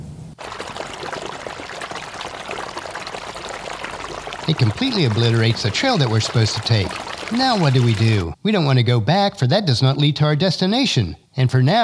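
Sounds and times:
rushing water of a flash flood: 0.4s - 8.2s
speech: 4.5s - 11.8s.

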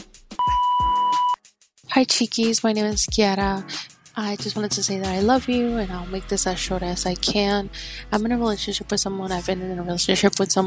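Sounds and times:
single steady electronic beep: 0.4s - 1.4s
speech: 2.0s - 10.6s.

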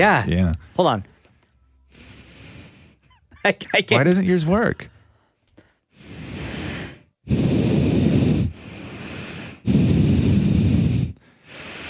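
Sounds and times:
speech: 0.0s - 1.1s, 3.4s - 4.9s, 7.3s - 7.6s
person exhaling loudly through the nose: 6.0s - 11.8s.

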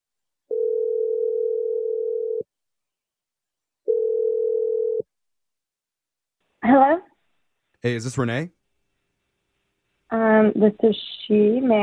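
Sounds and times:
long steady single-pitch telephone ringing tones: 0.5s - 2.5s, 3.9s - 5.1s
speech: 7.8s - 8.6s, 10.4s - 11.8s.

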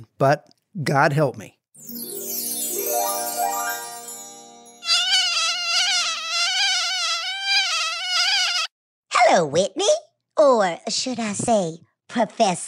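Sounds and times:
speech: 0.2s - 1.6s, 9.3s - 12.6s
mosquito buzzing: 4.8s - 8.7s.

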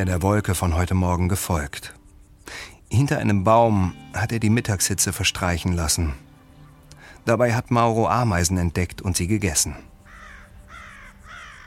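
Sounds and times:
speech: 0.0s - 6.3s, 7.2s - 9.9s
crows cawing in a desert: 6.2s - 7.2s, 10.0s - 11.6s.

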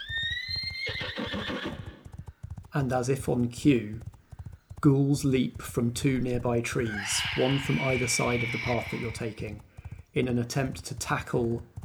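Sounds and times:
horse whinnying loudly: 0.0s - 2.1s, 6.8s - 9.6s
horse hooves clip-clopping: 0.0s - 11.8s
speech: 2.8s - 4.1s, 4.8s - 11.7s.

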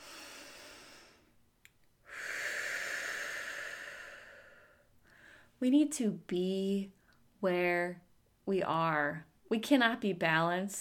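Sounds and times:
deep cleansing breath: 0.0s - 1.4s, 2.0s - 5.6s
speech: 5.6s - 10.7s.

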